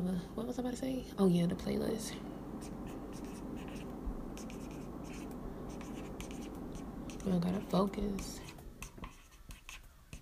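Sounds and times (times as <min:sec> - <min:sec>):
speech: 0:00.0 - 0:02.8, 0:07.3 - 0:08.4
low hum: 0:00.0 - 0:10.2
handwriting with a pen on paper: 0:02.6 - 0:10.2.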